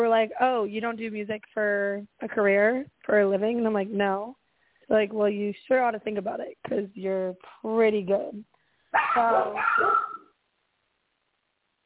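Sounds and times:
speech: 0.0s - 10.1s
dogs barking: 9.0s - 10.3s.

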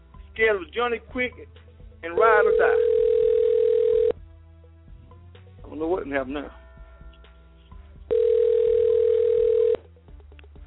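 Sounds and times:
speech: 0.4s - 3.0s, 5.7s - 6.6s
telephone single steady electronic tone: 2.3s - 4.2s, 8.1s - 9.8s.

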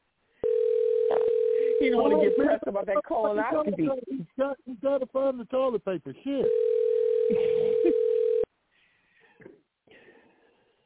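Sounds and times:
telephone ringing tone on the line: 0.4s - 2.6s, 6.4s - 8.5s
speech: 1.8s - 6.7s, 7.3s - 8.1s.

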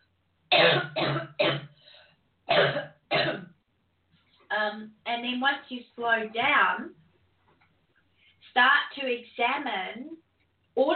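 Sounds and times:
person coughing: 0.5s - 1.8s, 2.5s - 3.5s
speech: 5.3s - 7.0s, 8.6s - 10.2s, 10.8s - 10.9s.

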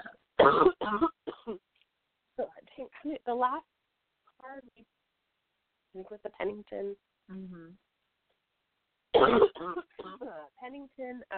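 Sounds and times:
sick person coughing: 0.0s - 1.6s, 9.2s - 10.3s
speech: 0.4s - 1.1s, 3.3s - 3.7s, 6.0s - 7.9s, 9.2s - 11.3s.

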